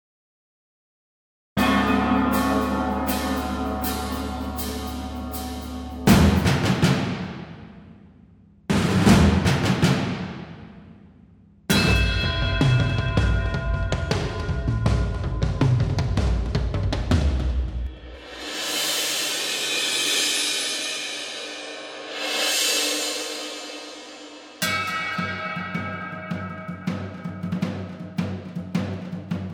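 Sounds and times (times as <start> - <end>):
drum flourish: 1.6 - 7.8, 8.7 - 10.7, 11.7 - 29.5.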